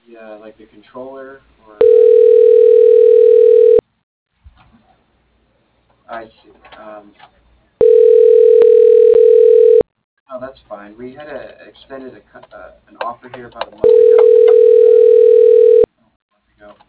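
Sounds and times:
speech: 0:00.2 - 0:02.8, 0:06.1 - 0:07.4, 0:10.8 - 0:14.6
steady single-pitched telephone tone from a call to an office extension: 0:01.8 - 0:03.8, 0:07.8 - 0:09.9, 0:13.8 - 0:15.9.

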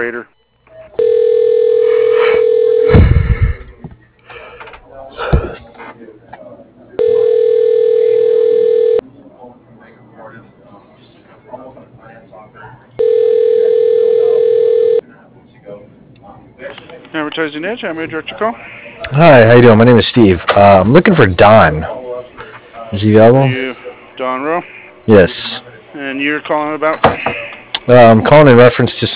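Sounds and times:
speech: 0:00.0 - 0:00.4, 0:17.5 - 0:22.0, 0:22.9 - 0:23.6, 0:24.5 - 0:25.4, 0:26.2 - 0:29.1
telephone line ringing while a call is transferred: 0:01.0 - 0:03.0, 0:07.0 - 0:09.0, 0:13.0 - 0:15.0
quiet talk: 0:03.5 - 0:13.4, 0:14.0 - 0:19.2, 0:21.8 - 0:27.9.

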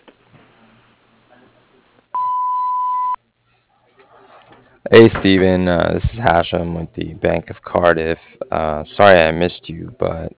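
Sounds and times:
answering machine beep on an office phone line: 0:02.2 - 0:03.2
speech: 0:04.9 - 0:10.3.

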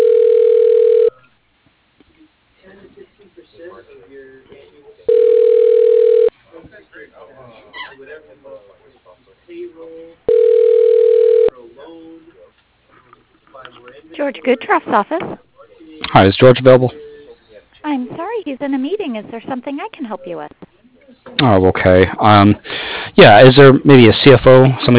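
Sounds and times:
long steady mid-pitched telephone line tones: 0:00.0 - 0:01.2, 0:05.1 - 0:06.3, 0:10.3 - 0:11.5
speech: 0:14.4 - 0:15.4, 0:16.1 - 0:17.0, 0:18.6 - 0:20.6, 0:21.4 - 0:24.9.

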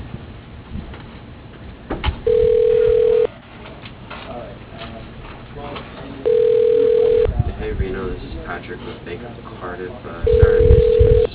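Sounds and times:
noisy background on a phone line: 0:02.2 - 0:03.3, 0:06.2 - 0:07.3, 0:10.3 - 0:11.3
telephone ringing tones while a call is transferred: 0:02.2 - 0:03.3, 0:06.2 - 0:07.3, 0:10.2 - 0:11.3.

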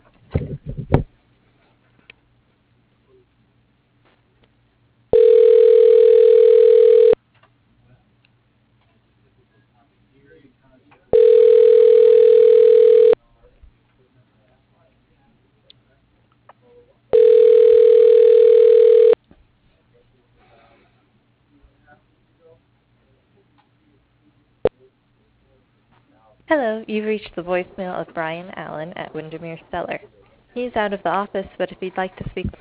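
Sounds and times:
telephone ringback tone while a call is being transferred: 0:05.1 - 0:07.2, 0:11.1 - 0:13.2, 0:17.1 - 0:19.2
speech: 0:26.9 - 0:32.5.

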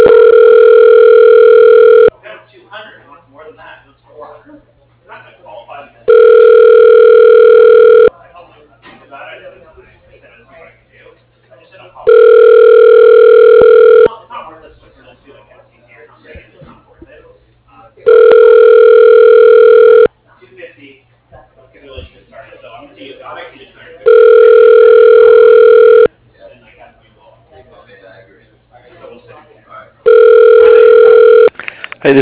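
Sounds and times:
telephone ringback tone while connecting call: 0:00.0 - 0:02.1, 0:06.1 - 0:08.1, 0:12.1 - 0:14.1, 0:18.1 - 0:20.1, 0:24.1 - 0:26.1, 0:30.1 - 0:31.5
faint voices: 0:00.1 - 0:32.2.

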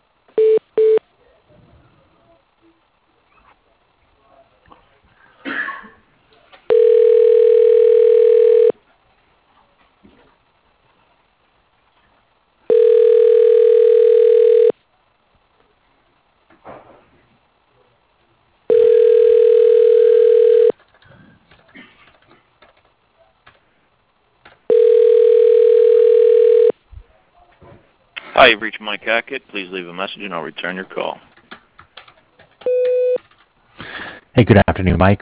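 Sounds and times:
telephone ringback tones of an office call: 0:06.7 - 0:08.7, 0:12.7 - 0:14.7, 0:18.7 - 0:20.7, 0:24.7 - 0:26.7, 0:32.6 - 0:33.2
speech: 0:28.4 - 0:31.3, 0:34.4 - 0:35.1
short beeps and clicks: 0:32.6 - 0:33.2.

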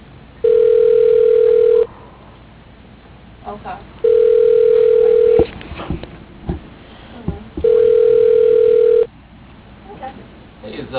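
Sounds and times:
ringback tones of an outgoing phone call through a telephone line: 0:00.4 - 0:01.9, 0:04.0 - 0:05.5, 0:07.6 - 0:09.1.

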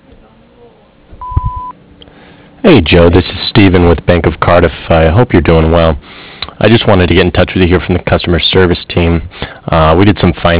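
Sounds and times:
faint low thumps: 0:01.1 - 0:01.7
landscaping company answering machine electronic beep: 0:01.2 - 0:01.7
speech: 0:02.6 - 0:10.5.

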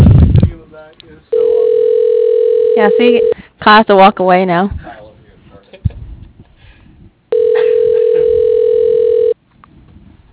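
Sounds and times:
fax machine answer tone over phone line: 0:01.3 - 0:03.4, 0:07.3 - 0:09.4
speech: 0:02.8 - 0:04.8.

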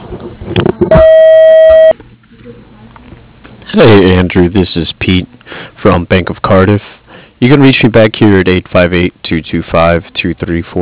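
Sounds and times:
speech: 0:00.8 - 0:01.2, 0:03.7 - 0:10.7
voicemail answering machine beep from a welding and machining business: 0:00.9 - 0:02.0.

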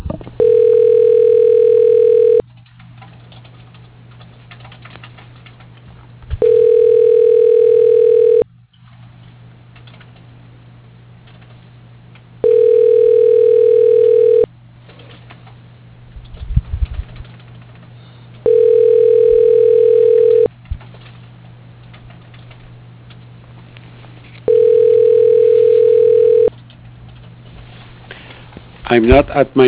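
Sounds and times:
quiet phone line hum: 0:00.4 - 0:02.4, 0:06.4 - 0:08.5, 0:12.4 - 0:14.5, 0:18.4 - 0:20.5, 0:24.4 - 0:26.5
telephone ringing tone while a call to an extension connects: 0:00.4 - 0:02.4, 0:06.4 - 0:08.4, 0:12.4 - 0:14.5, 0:18.4 - 0:20.5, 0:24.5 - 0:26.5
speech: 0:28.9 - 0:29.6.

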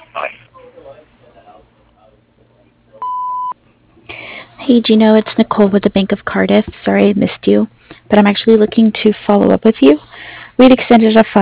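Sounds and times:
faint murmur: 0:00.0 - 0:03.1
answering machine beep: 0:03.0 - 0:03.6
speech: 0:04.7 - 0:11.4.

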